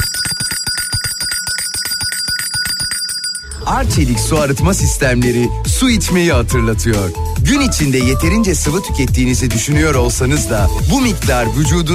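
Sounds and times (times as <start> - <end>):
small bell ringing rapidly as a reminder chime: 0.0 - 4.4
speech: 3.7 - 11.9.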